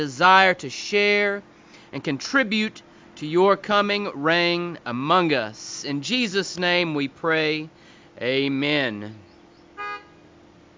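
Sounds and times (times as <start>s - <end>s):
speech: 0.0s - 9.2s
single short car horn honk: 9.8s - 10.3s.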